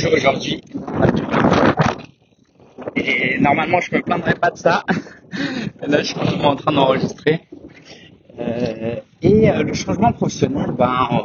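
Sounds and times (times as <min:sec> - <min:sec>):
speech: 0:00.0 - 0:01.3, 0:03.0 - 0:07.5, 0:08.4 - 0:11.2
wind buffeting the microphone: 0:00.0 - 0:11.2
laughter: 0:03.0 - 0:07.0.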